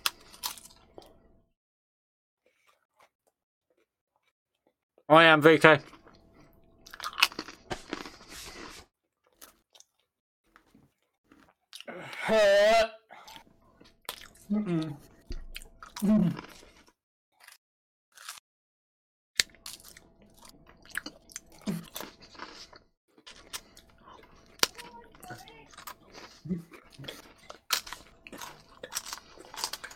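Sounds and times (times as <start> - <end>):
wet chewing and crunching of food: 0.0 - 1.3, 2.4 - 5.1, 5.8 - 11.9, 13.1 - 18.4, 19.4 - 29.9
speech: 5.1 - 6.0
gagging-like vocal noises: 11.8 - 13.4.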